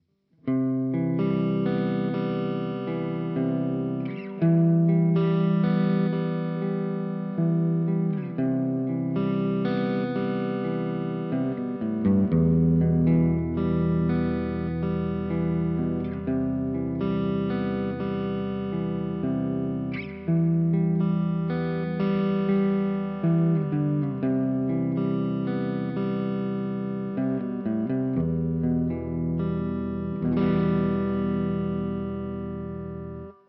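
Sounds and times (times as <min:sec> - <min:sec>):
overdriven guitar with reverb: 0:00.4 - 0:33.4.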